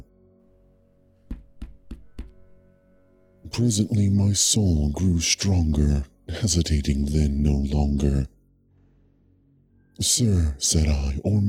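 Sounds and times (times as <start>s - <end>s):
firm knocks on a wooden door: 1.3s - 2.5s
speech: 3.6s - 8.3s, 10.0s - 11.4s.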